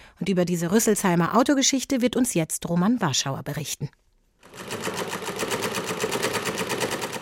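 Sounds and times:
speech: 0:00.2 - 0:04.0
sewing machine running: 0:04.4 - 0:07.1.

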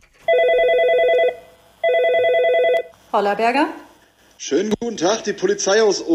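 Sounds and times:
telephone ringing with an electronic trill: 0:00.2 - 0:02.9
speech: 0:03.1 - 0:03.8, 0:04.4 - 0:06.1.

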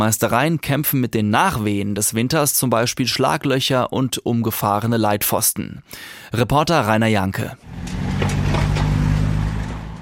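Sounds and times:
speech: 0:00.0 - 0:08.3
cars trucks and motorcycles rolling past: 0:07.6 - 0:10.0
road traffic rumbling on a district road in the Schwalm-Eder district Germany: 0:07.6 - 0:10.0
tires hissing over the pavement: 0:07.6 - 0:10.0.

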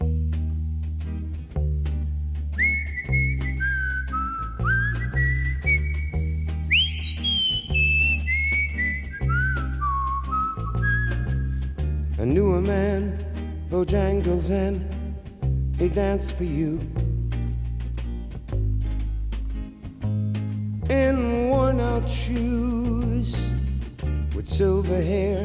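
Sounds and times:
steady low bass: 0:00.0 - 0:25.4
whistled melody in slow song intro: 0:02.6 - 0:11.9
speech: 0:12.3 - 0:15.0, 0:15.8 - 0:17.0, 0:22.0 - 0:23.4, 0:24.4 - 0:25.4.

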